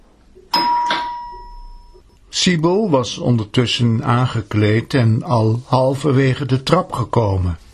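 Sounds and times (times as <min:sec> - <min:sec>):
doorbell ding-dong chime: 0:00.5 - 0:02.0
speech: 0:02.4 - 0:07.6.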